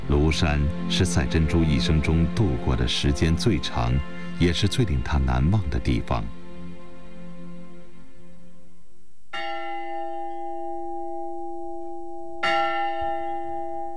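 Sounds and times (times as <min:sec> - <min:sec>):
church bell tolling at Lushan China: 0:00.1 - 0:05.6, 0:09.3 - 0:13.9
speech: 0:00.3 - 0:06.4.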